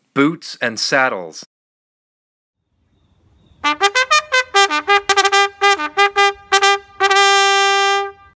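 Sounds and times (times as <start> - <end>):
bugle call on a c1880 cycling bugle: 3.6 - 8.3.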